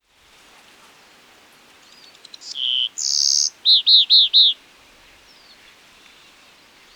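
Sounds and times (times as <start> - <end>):
Myiothlypis nigrocristata black-crested warbler song: 1.8 - 6.9.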